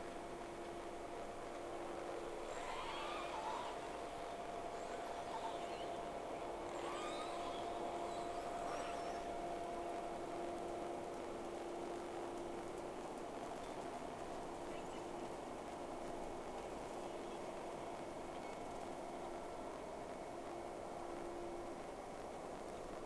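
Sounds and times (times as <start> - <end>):
constant hiss: 0.0 - 23.0
steady low hum: 0.0 - 23.0
whale calls: 2.4 - 10.0.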